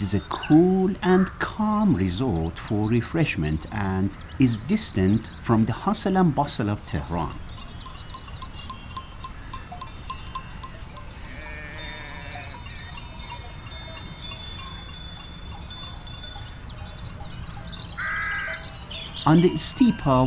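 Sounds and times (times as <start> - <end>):
speech: 0.0 - 7.4, 19.3 - 20.2
small bells jingling: 6.8 - 20.2
sheep bleating on a steep mountain pasture: 11.2 - 12.9.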